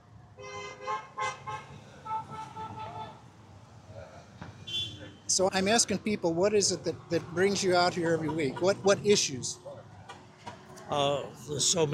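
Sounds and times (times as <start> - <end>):
car horns honking: 0.4 - 3.2, 4.6 - 5.4
speech: 5.3 - 9.7, 10.9 - 11.9.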